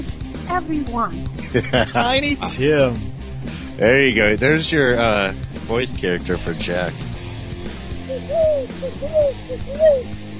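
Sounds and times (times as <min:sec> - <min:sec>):
speech: 0:00.0 - 0:03.1, 0:03.8 - 0:07.1, 0:08.1 - 0:10.2
laughter: 0:01.4 - 0:02.6
bird hooting calls: 0:08.0 - 0:10.2.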